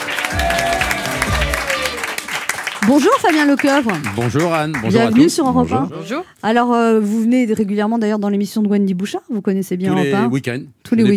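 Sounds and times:
studio audience applause on a radio talk show: 0.0s - 5.8s
speech: 2.9s - 11.1s.

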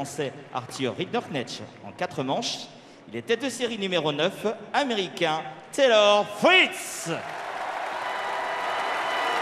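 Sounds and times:
speech: 0.0s - 7.4s
large tennis crowd applauding: 7.1s - 9.3s.

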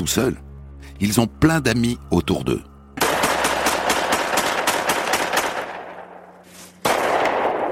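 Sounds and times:
speech: 0.0s - 2.7s
gunfire during shooting practice in a forest: 3.0s - 6.1s, 6.8s - 7.7s.

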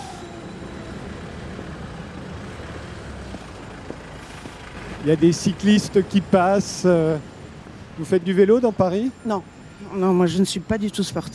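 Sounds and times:
city traffic on a boulevard: 0.0s - 11.3s
speech: 5.0s - 7.3s, 8.0s - 11.3s.

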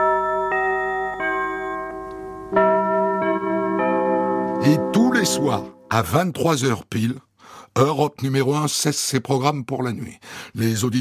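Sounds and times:
radio station hourly carillon chime: 0.0s - 6.0s
speech: 4.6s - 10.9s.

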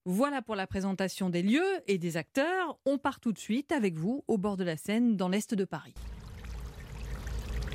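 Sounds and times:
speech: 0.0s - 6.2s
cement-laden wastewater pouring into a river: 6.0s - 7.7s.

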